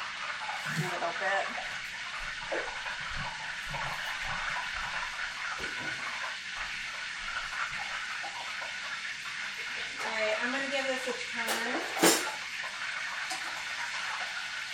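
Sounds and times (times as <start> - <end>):
liquid bubbling vigorously in a cooking pan: 0.0 - 14.7
speech: 0.7 - 1.8, 2.5 - 3.9, 10.4 - 12.1.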